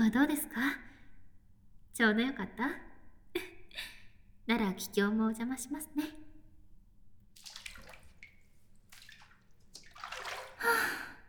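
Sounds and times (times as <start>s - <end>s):
speech: 0.0s - 0.9s, 2.0s - 3.9s, 4.5s - 6.2s
water sloshing as a person climbs into a filled bathtub: 7.2s - 11.2s
water splash in a bathtub: 7.4s - 10.8s.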